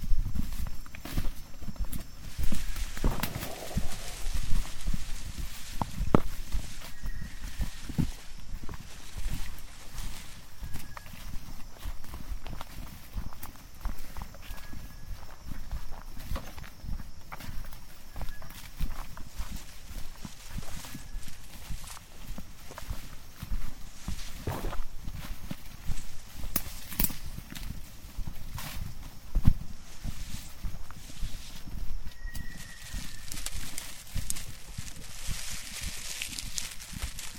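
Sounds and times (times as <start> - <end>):
footsteps crunching along a rainforest trail: 0.0 - 37.3
brushed leaves rustling: 0.3 - 13.9, 18.2 - 37.3
faint short bird chirps: 2.4 - 8.6, 10.2 - 11.4, 14.0 - 15.6, 17.6 - 19.1, 20.5 - 21.8, 32.0 - 33.8
low rumble: 2.8 - 5.8.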